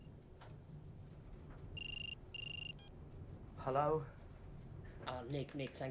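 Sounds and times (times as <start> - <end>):
low rumble: 0.0 - 5.8
telephone ringing with electronic trilling in a lift: 1.8 - 2.9
speech: 3.6 - 4.2, 5.0 - 5.8.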